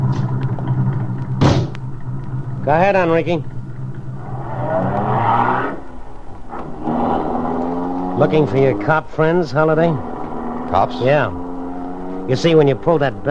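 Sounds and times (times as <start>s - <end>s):
car engine rumbling: 0.0s - 13.2s
door thud: 1.4s - 1.8s
speech: 2.6s - 3.6s, 8.2s - 10.1s, 10.7s - 11.4s, 12.3s - 13.2s.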